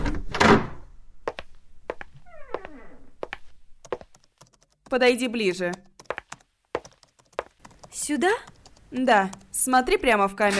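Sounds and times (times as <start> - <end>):
brief rising door creak: 2.2 - 3.3
speech: 4.9 - 5.8, 8.1 - 10.5.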